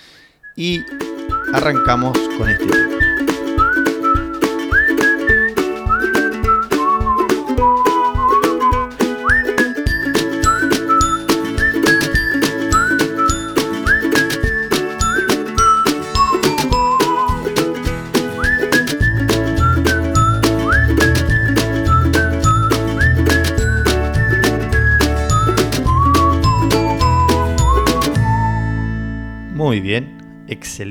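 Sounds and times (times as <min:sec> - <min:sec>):
cheerful whistled jingle melody: 0:00.4 - 0:30.0
speech: 0:00.6 - 0:03.3, 0:29.7 - 0:30.8
bouncy instrumental backing with steady percussion: 0:00.6 - 0:30.8
deep bass line: 0:19.0 - 0:30.3.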